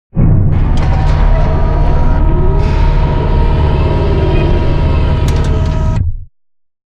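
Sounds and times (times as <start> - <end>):
servo lifting giant floor panel assembly: 0.7 - 6.0.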